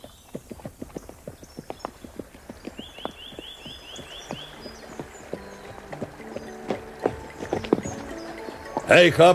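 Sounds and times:
horse hooves clip-clopping at a walking pace: 0.0 - 9.3
brief high whistling chirp: 2.7 - 9.2.

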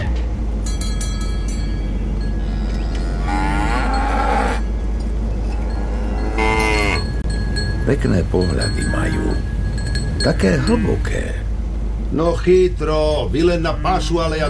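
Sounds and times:
steady low rumble: 0.0 - 14.4
cow mooing: 2.3 - 7.2
speech: 7.9 - 9.5, 10.2 - 11.4, 12.1 - 14.4.

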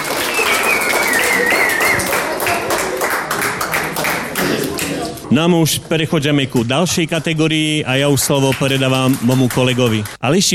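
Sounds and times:
audience applauding: 0.0 - 5.3, 7.9 - 10.2
high whistle-like tone: 0.2 - 2.1
speech: 5.3 - 10.5.

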